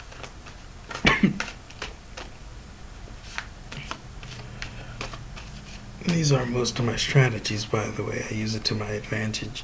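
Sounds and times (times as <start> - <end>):
deck of playing cards being shuffled: 0.0 - 2.4, 3.2 - 8.0
speech: 6.1 - 9.6.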